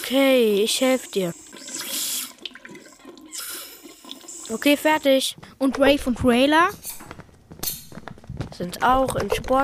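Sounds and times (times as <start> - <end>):
water gushing from a tap at a sink: 0.0 - 5.2
speech: 0.1 - 1.9, 4.5 - 6.9, 8.6 - 9.6.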